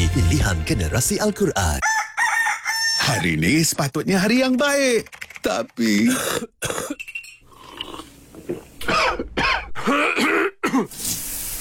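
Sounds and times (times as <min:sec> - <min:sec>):
speech: 0:00.2 - 0:02.1, 0:03.1 - 0:07.0
person clearing their throat: 0:06.0 - 0:07.0, 0:08.8 - 0:10.9
person coughing: 0:06.0 - 0:07.0, 0:08.8 - 0:11.0.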